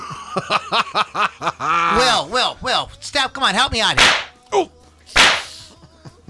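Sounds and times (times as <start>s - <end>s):
laughter: 0.0s - 2.2s, 5.6s - 6.2s
speech: 0.4s - 4.7s
slap to the face: 4.0s - 4.4s, 5.2s - 5.6s.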